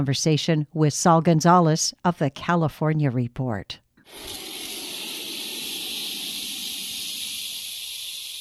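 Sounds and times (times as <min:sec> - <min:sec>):
speech: 0:00.0 - 0:04.5
disturbed diamondback rattlesnake rattling: 0:04.0 - 0:08.4.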